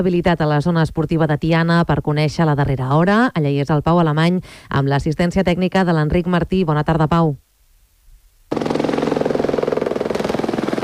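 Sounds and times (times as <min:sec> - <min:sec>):
speech: 0:00.0 - 0:07.4
helicopters flying water-drop runs over a wildfire: 0:08.5 - 0:10.8.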